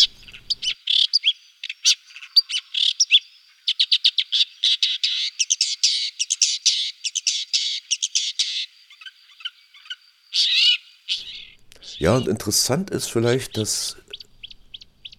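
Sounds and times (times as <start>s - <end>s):
recording of a small songbird singing: 0.0s - 12.4s, 13.2s - 15.1s
speech: 12.0s - 14.0s.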